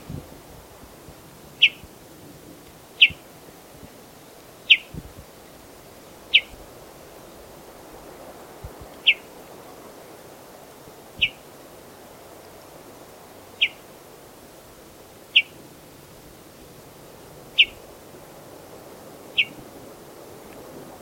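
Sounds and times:
western bluebird singing: 0:01.6 - 0:01.8, 0:09.0 - 0:09.3, 0:13.6 - 0:13.8, 0:17.6 - 0:17.8, 0:19.4 - 0:19.6.

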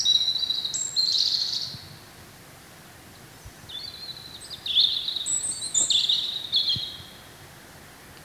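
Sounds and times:
European robin singing: 0:00.0 - 0:01.9, 0:03.7 - 0:07.3.

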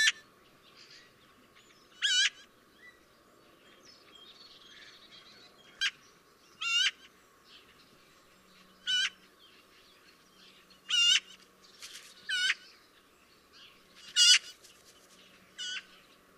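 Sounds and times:
Eurasian magpie giving loud harsh notes: 0:00.0 - 0:00.2, 0:02.0 - 0:02.5, 0:06.6 - 0:07.1, 0:08.8 - 0:09.2, 0:10.9 - 0:11.4, 0:12.3 - 0:12.7, 0:14.0 - 0:14.6, 0:15.6 - 0:15.9.

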